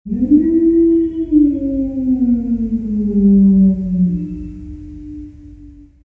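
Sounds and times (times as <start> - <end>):
wolf: 0.1 - 6.0.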